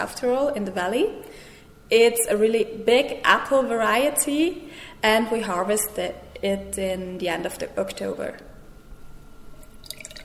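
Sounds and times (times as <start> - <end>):
speech: 0.0 - 8.5
apple juice pouring: 9.5 - 10.2.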